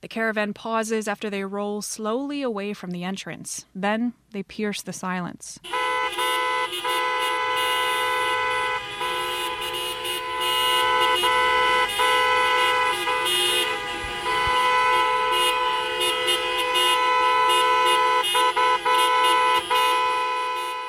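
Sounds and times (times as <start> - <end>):
speech: 0.0 - 6.2
several car horns blaring from a stalled caravan of gray cars: 5.6 - 20.8.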